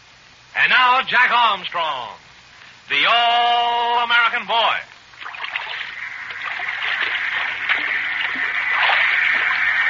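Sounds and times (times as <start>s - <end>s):
speech: 0.6s - 2.2s, 2.9s - 4.9s
harbor water lapping against the hull of an anchored schooner in Manila Harbor at night: 5.2s - 9.6s.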